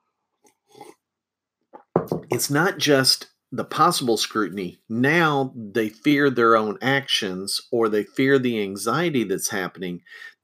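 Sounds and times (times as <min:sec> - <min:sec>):
person sipping a drink: 0:00.7 - 0:01.0
speech: 0:02.1 - 0:10.4
breathy exhale: 0:10.1 - 0:10.4.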